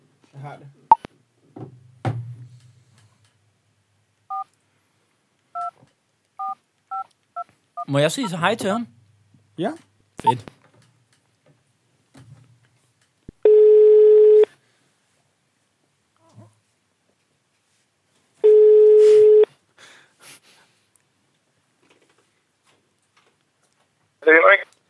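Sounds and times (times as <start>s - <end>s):
speech: 0.4s - 0.9s, 7.9s - 9.0s, 9.6s - 10.5s
telephone keypad dual-pitched dialing beeps: 6.4s - 7.0s
telephone ringback tone while calling: 13.4s - 14.5s, 18.4s - 19.5s.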